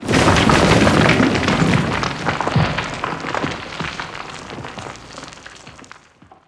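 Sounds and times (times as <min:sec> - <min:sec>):
junk debris: 0:00.0 - 0:06.4.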